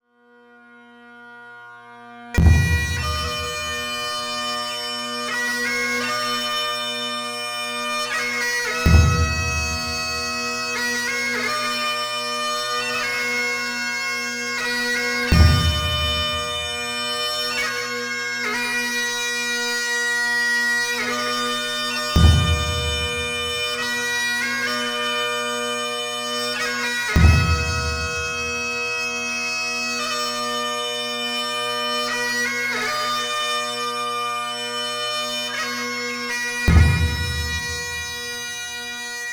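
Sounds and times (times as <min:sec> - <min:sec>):
bagpipe melody: 0:00.3 - 0:39.3
drum beating: 0:02.4 - 0:04.1, 0:08.8 - 0:10.4, 0:15.3 - 0:16.9, 0:22.2 - 0:23.8, 0:27.2 - 0:28.8, 0:36.7 - 0:38.3.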